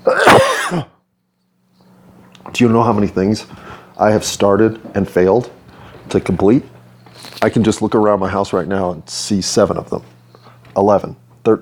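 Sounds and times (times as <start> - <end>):
person coughing: 0.0 - 1.0
speech: 0.7 - 0.9, 2.6 - 10.2, 10.8 - 11.6.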